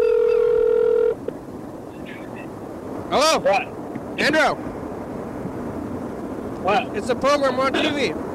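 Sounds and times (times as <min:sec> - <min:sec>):
electronic phone ringing tone: 0:00.0 - 0:01.2
speech: 0:03.1 - 0:04.7, 0:06.6 - 0:08.2.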